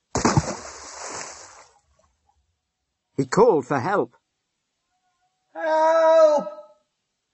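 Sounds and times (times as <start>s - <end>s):
heavy splash of a man falling into a well: 0.1s - 1.7s
churning, sloshing water in a well: 0.2s - 1.8s
speech: 3.2s - 4.2s, 5.6s - 6.6s.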